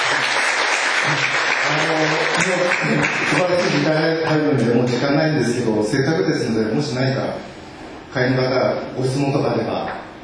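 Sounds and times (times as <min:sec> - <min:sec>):
audience applause: 0:00.0 - 0:04.1
speech: 0:02.0 - 0:10.0.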